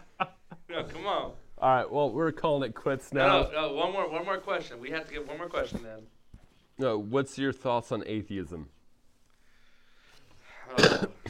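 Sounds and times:
speech: 0.8 - 6.2, 6.8 - 8.8
single harsh throaty cough close to the microphone: 10.7 - 11.2.

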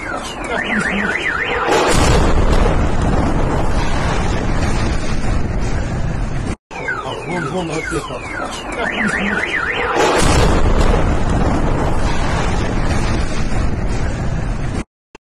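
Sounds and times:
warbling car alarm: 0.0 - 1.9, 6.7 - 10.2
rocket strike explosion in Kyiv Ukraine: 1.4 - 6.6, 9.8 - 14.8.

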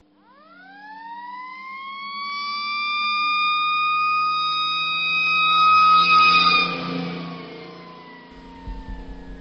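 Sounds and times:
fire truck siren wailing: 0.2 - 9.3
low fire truck engine rumble: 8.3 - 9.3.

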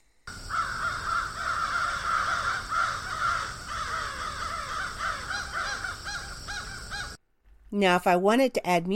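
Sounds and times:
dense flock of crows cawing: 0.3 - 7.2
speech: 7.7 - 8.9.

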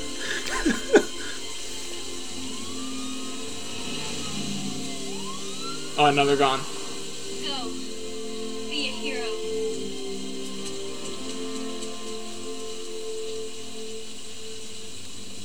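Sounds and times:
laughter: 0.0 - 2.0
faint tonal sounds: 0.0 - 15.4
steady rain hissing: 0.0 - 15.4
speech: 6.0 - 6.7.

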